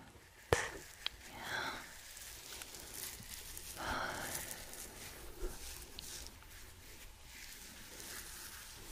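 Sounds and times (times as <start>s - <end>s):
rubbing and brushing on skin and hair during a massage: 0.2s - 8.9s.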